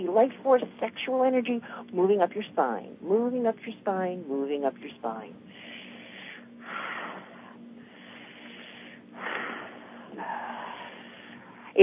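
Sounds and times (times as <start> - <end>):
speech: 0.2 - 5.7
deep rhythmic breathing during exercise: 1.6 - 2.0, 5.3 - 11.8.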